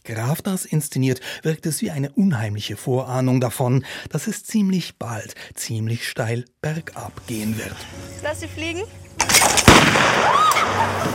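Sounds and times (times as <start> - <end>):
speech: 0.0 - 11.1
shotgun blast outdoors at clay pigeons: 9.2 - 11.1.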